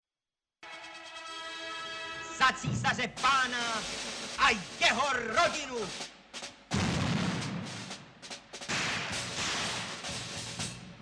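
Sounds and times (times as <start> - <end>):
speech: 2.5 - 6.1
gunshots: 6.7 - 10.4.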